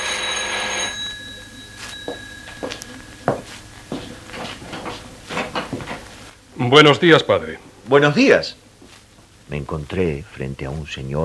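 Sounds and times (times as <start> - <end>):
bell-like ring at the door of a parish house: 0.0 - 3.6
speech: 2.1 - 2.8, 6.6 - 8.6, 9.5 - 11.2.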